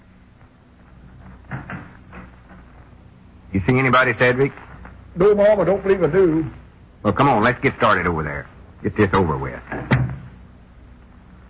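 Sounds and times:
hum: 0:00.0 - 0:11.4
wooden clunks and creaks: 0:01.2 - 0:02.8, 0:09.6 - 0:10.4
door being opened: 0:01.4 - 0:02.7, 0:09.6 - 0:10.4
speech: 0:03.5 - 0:04.6, 0:05.2 - 0:10.0.

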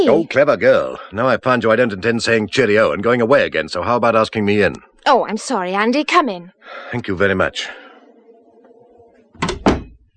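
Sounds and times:
speech: 0:00.0 - 0:07.8
door opening and closing: 0:08.6 - 0:10.1.

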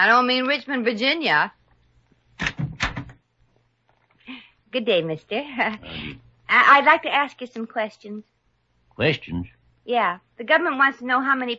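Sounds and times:
speech: 0:00.0 - 0:01.6, 0:04.7 - 0:08.3, 0:09.0 - 0:11.5
door being opened: 0:02.4 - 0:03.2.

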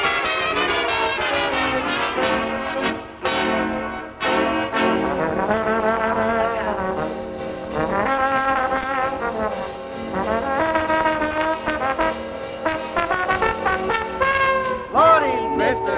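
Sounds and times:
brassy swinging trombone solo: 0:00.0 - 0:15.4
band playing: 0:00.0 - 0:15.9.

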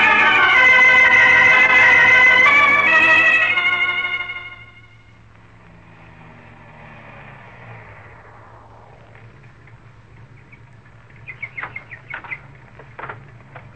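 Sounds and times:
road noise from driving car: 0:00.0 - 0:13.7
car driving with steady low engine rumble: 0:00.4 - 0:13.7
light clicks and rattles: 0:11.6 - 0:13.7.

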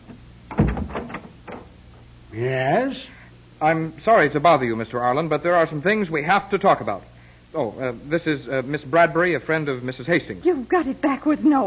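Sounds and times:
faint hissy background: 0:00.0 - 0:11.6
door wood rattling: 0:00.5 - 0:01.8
heavy door latch thunk: 0:00.5 - 0:01.8
speech: 0:02.4 - 0:11.6.

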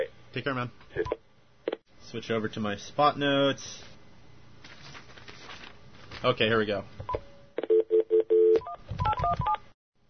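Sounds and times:
speech: 0:00.4 - 0:01.2, 0:02.0 - 0:03.9, 0:06.2 - 0:07.2
electronic telephone keypad dialing tones: 0:07.6 - 0:09.6.

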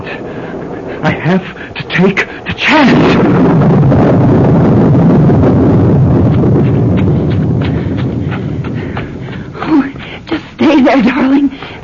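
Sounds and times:
loud rumbling wind noise: 0:00.0 - 0:11.8
speech: 0:01.2 - 0:03.2, 0:10.8 - 0:11.6
cavalry horse hooves clip-clopping: 0:06.2 - 0:11.8.

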